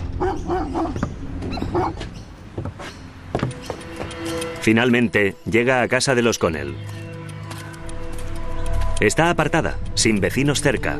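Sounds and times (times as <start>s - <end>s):
dogs barking: 0.2s - 2.1s
speech: 1.7s - 2.2s, 4.7s - 7.0s, 9.0s - 10.9s.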